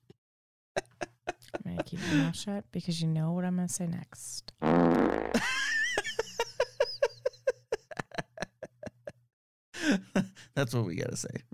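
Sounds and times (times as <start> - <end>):
laughter: 0.8 - 2.3, 5.4 - 9.2
speech: 1.8 - 5.6, 10.6 - 11.5
fart sound effect: 4.6 - 5.4.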